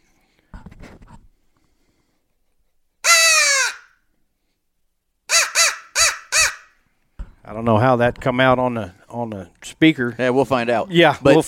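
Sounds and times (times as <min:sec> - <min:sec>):
crow call blown loudly to make a turkey gobble: 0:03.0 - 0:04.0, 0:05.3 - 0:06.8
speech: 0:07.5 - 0:11.4.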